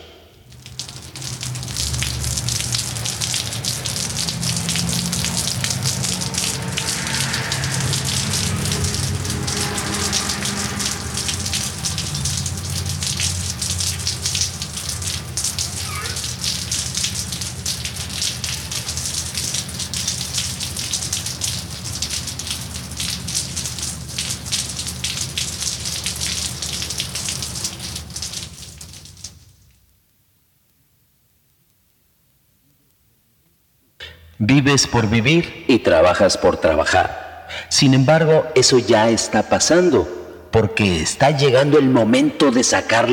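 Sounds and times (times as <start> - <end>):
steady dense rain falling on city streets: 0.4 - 30.6
low rumble: 4.5 - 13.8
speech: 34.7 - 37.2, 37.8 - 43.1.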